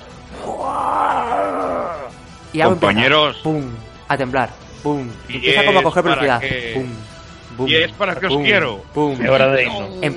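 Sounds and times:
person imitating a huge drawn-out roar: 0.3s - 2.2s
speech: 2.5s - 10.1s.

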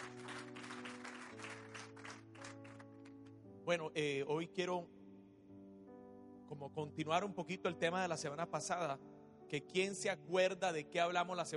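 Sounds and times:
audience applauding: 0.0s - 3.2s
sustained keyboard or organ chords: 0.0s - 11.5s
speech: 3.7s - 5.0s, 6.5s - 11.5s.

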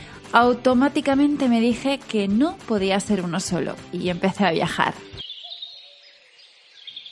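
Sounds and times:
speech: 0.3s - 5.3s
birds chirping in the morning: 4.1s - 7.0s.

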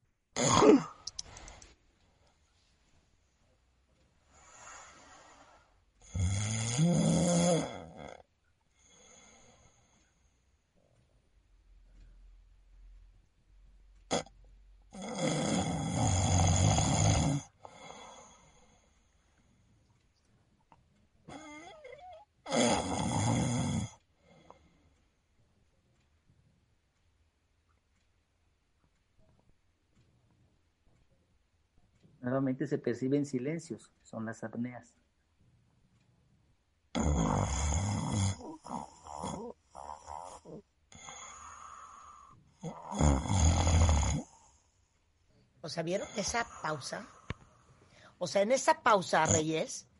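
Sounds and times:
speech: 0.4s - 0.9s, 32.2s - 35.1s, 45.6s - 47.2s, 48.2s - 49.9s
faint breathing: 4.2s - 6.1s, 8.7s - 10.6s, 17.6s - 19.8s, 24.2s - 25.2s, 40.9s - 42.6s, 46.2s - 48.2s
man snoring in his sleep: 4.5s - 8.2s, 14.1s - 14.3s, 14.9s - 18.6s, 21.3s - 24.0s, 36.9s - 44.5s.

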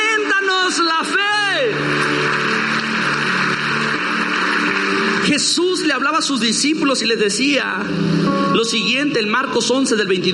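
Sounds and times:
large crowd applauding loudly: 0.0s - 7.6s
speech: 5.4s - 10.3s.

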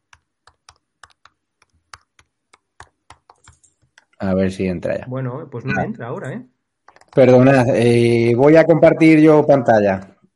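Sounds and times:
fast typing on a computer keyboard while entering a password: 0.0s - 4.2s, 6.8s - 7.3s
speech: 4.2s - 6.5s, 7.2s - 10.1s.

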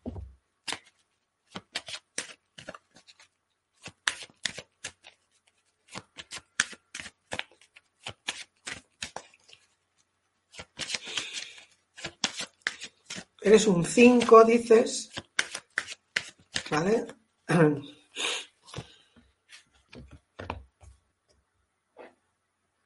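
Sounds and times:
playing cards being shuffled for a card reading: 0.6s - 9.8s, 10.5s - 13.4s, 15.1s - 16.8s
speech: 13.5s - 15.1s, 16.8s - 17.9s.

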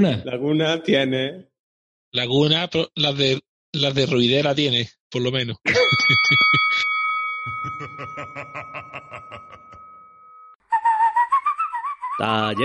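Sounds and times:
speech: 0.0s - 1.5s, 2.1s - 6.5s, 12.2s - 12.6s
laughter: 5.7s - 6.8s, 7.5s - 9.8s
pulsing rhythmic backing: 5.8s - 10.6s
person whistling imitating squeaky brakes: 10.7s - 12.6s.

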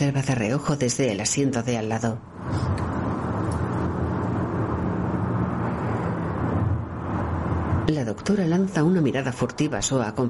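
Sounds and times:
speech: 0.0s - 2.9s, 7.9s - 10.2s
road and engine rumble inside a moving car: 2.0s - 10.2s.

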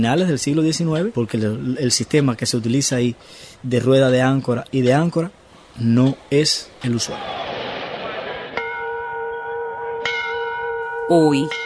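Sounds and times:
speech: 0.0s - 7.4s, 11.1s - 11.6s
large railway station bell ringing: 8.6s - 11.6s.

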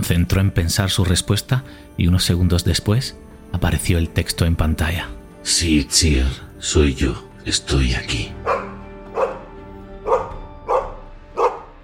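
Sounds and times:
speech: 0.0s - 8.7s
dog barking: 8.4s - 11.8s.

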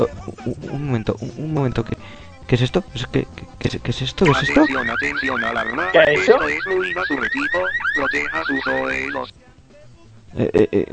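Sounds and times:
speech: 0.0s - 9.5s, 10.3s - 10.9s
loud electronic alarm wailing in rising sweeps: 4.3s - 9.3s.

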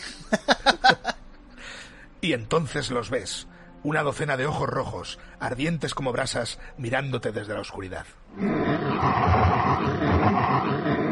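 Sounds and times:
laughter: 0.1s - 1.3s
speech: 0.3s - 0.8s, 2.2s - 9.9s
thin hungry wolves growling: 8.3s - 11.1s.

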